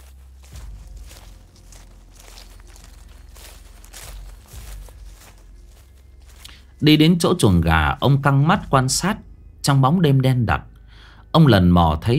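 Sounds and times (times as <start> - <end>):
footsteps rustling and crunching through dry leaves in a garden at night: 0.0 - 9.1
speech: 6.8 - 10.7, 11.4 - 12.1.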